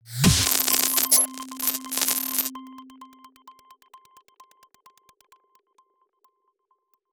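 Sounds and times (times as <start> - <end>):
glitch sound logo: 0.1 - 2.5.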